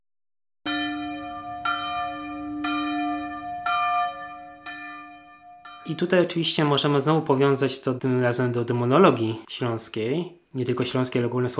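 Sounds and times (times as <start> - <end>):
church bell tolling at noon for the Angelus: 0.7 - 7.5
speech: 5.9 - 11.5.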